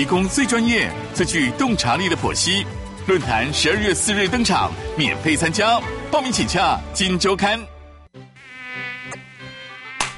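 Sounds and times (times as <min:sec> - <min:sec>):
speech: 0:00.0 - 0:07.7
mosquitoes buzzing in hot weather: 0:08.3 - 0:10.1.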